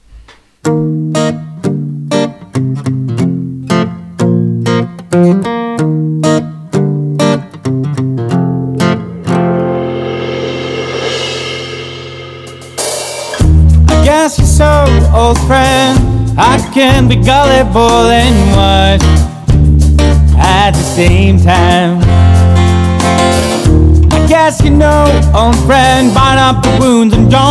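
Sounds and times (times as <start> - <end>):
folk-americana song intro with strummed chords: 0.6 - 27.5
speech: 0.7 - 1.4, 17.0 - 19.1, 21.0 - 22.1, 24.5 - 27.5
cymbal wash: 8.6 - 13.7.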